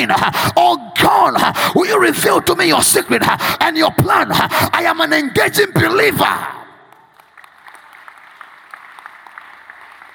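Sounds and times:
speech: 0:00.0 - 0:06.6
audience clapping hands: 0:07.0 - 0:10.1.

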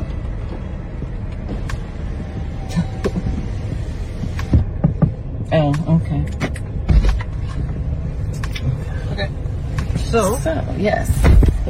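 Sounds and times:
car engine rumbling: 0:00.0 - 0:11.6
speech: 0:10.1 - 0:11.6.

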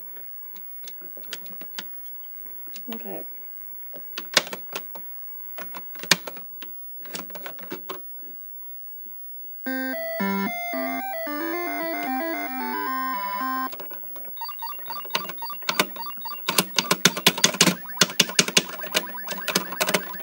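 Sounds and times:
speech: 0:02.9 - 0:04.0
Texas Instruments computer keyboard keys clacking during game play: 0:09.7 - 0:13.7, 0:14.4 - 0:20.2
bright bleepy electronic game music: 0:09.7 - 0:13.7, 0:14.4 - 0:20.2.

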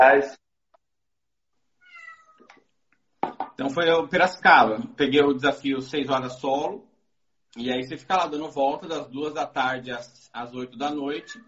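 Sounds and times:
speech: 0:00.0 - 0:00.4, 0:03.6 - 0:06.9, 0:07.6 - 0:11.4
high-pitched drawn-out kitten meow: 0:01.8 - 0:02.5, 0:11.1 - 0:11.4.

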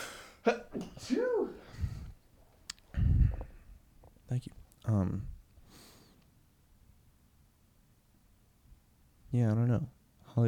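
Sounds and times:
person sneezing: 0:00.0 - 0:01.8
breathy sounds: 0:01.6 - 0:02.2, 0:02.9 - 0:03.8
speech: 0:04.3 - 0:05.3, 0:09.3 - 0:10.4.

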